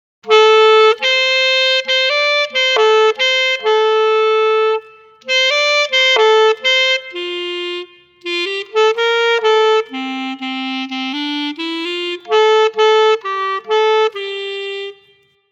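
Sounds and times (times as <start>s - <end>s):
clarinet playing: 0.2s - 15.4s.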